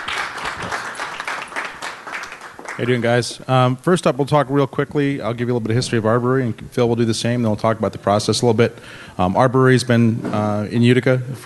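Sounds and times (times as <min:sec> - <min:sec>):
crowd applauding: 0:00.0 - 0:03.2
speech: 0:02.8 - 0:11.4.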